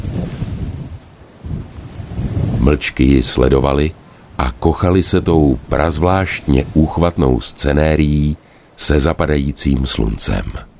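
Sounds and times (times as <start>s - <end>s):
wind blowing over a plain: 0.0s - 8.4s
speech: 2.7s - 10.7s.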